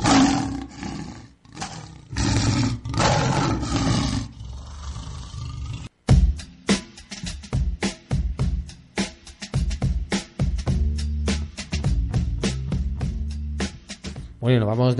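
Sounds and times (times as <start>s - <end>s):
big cat roaring: 0.0s - 5.9s
rhythmic music with punchy percussive hits: 6.0s - 14.9s
speech: 14.5s - 14.9s.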